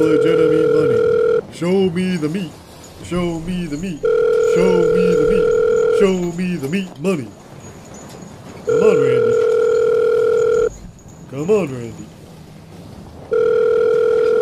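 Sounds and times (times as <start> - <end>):
man muttering impatiently: 0.0 - 1.0, 3.2 - 7.0
telephone ringback tone through a handset: 0.0 - 1.5, 4.0 - 6.5, 8.7 - 10.7, 13.3 - 14.4
speech: 0.0 - 7.4, 8.7 - 9.4, 11.3 - 12.2.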